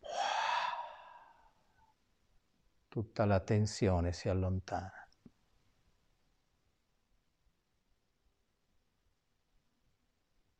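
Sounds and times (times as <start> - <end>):
slow deep breath during a guided relaxation exercise: 0.0 - 1.6
speech: 2.9 - 5.0.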